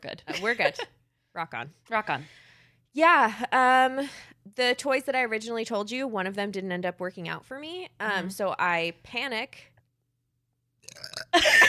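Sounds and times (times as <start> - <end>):
speech: 0.1 - 9.7, 10.9 - 11.6
loud raspy belch: 10.8 - 11.4
soft gurgling burp: 10.8 - 11.4.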